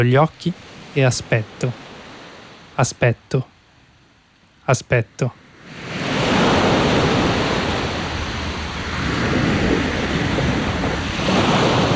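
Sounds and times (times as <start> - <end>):
speech: 0.0 - 1.8, 2.8 - 3.5, 4.7 - 5.4
ocean surf washing against the shore: 0.0 - 11.9
gusty wind buffeting the microphone: 5.7 - 11.9.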